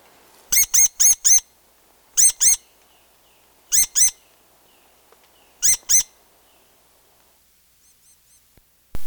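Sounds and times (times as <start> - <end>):
rose-breasted grosbeak Pheucticus ludovicianus giving sharp squeaky metallic call notes: 0.5 - 1.5, 2.2 - 2.8, 3.7 - 4.3, 5.4 - 6.2, 7.8 - 8.5.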